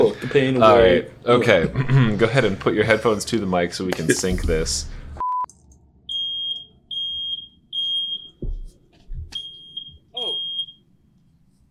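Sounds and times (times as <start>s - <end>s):
speech: 0.4s - 5.0s
smoke alarm beeping: 6.1s - 8.6s, 9.3s - 10.9s.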